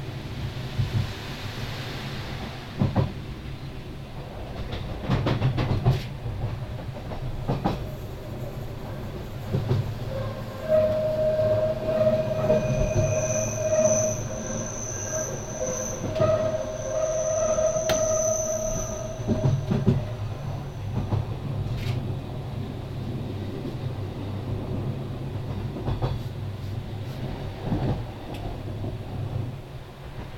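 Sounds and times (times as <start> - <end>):
train to Lauterbrunnen rumbling on tracks: 0.0 - 30.3
rails ringing with metallic singing tones: 10.1 - 21.0.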